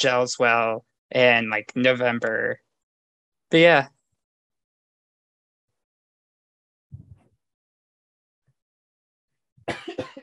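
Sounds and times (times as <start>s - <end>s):
speech: 0.0s - 2.6s, 3.5s - 4.0s
person coughing: 9.7s - 10.2s.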